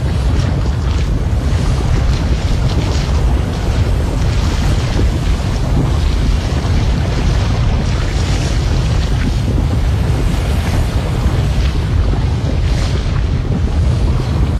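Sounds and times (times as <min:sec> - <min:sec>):
ambient lava loop: 0:00.0 - 0:14.5.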